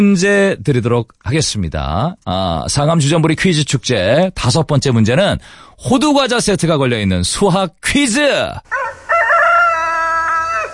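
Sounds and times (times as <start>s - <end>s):
speech: 0.0s - 8.8s
rooster crowing: 8.7s - 10.7s.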